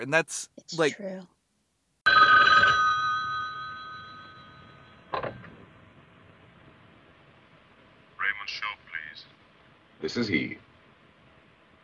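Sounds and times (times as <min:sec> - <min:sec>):
speech: 0:00.0 - 0:01.4, 0:10.0 - 0:10.6
old-fashioned telephone bell ringing: 0:02.1 - 0:05.1.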